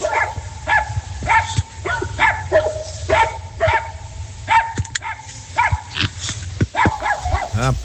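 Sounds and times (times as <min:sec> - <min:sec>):
several dogs barking in a square: 0:00.0 - 0:03.8, 0:06.8 - 0:07.8.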